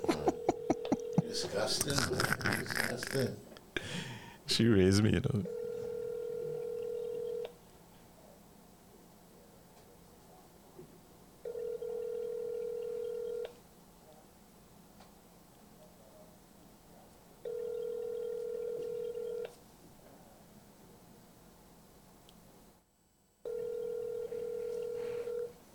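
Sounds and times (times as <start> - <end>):
laughter: 0.0 - 4.1
speech: 1.4 - 3.5, 4.5 - 5.6
phone line electronic ringback tone: 5.5 - 7.4, 11.5 - 13.4, 17.5 - 19.4, 23.5 - 25.5.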